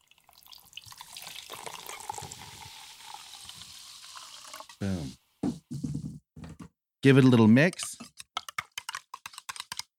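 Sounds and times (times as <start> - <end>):
citrus soda poured from a can into a cocktail glass with lime juice: 0.0 - 4.8
speech: 4.8 - 5.2, 7.0 - 7.9.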